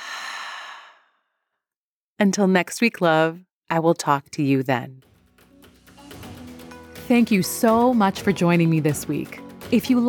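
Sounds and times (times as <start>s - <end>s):
long deep exhale: 0.0s - 1.2s
speech: 2.2s - 5.1s, 7.1s - 10.0s.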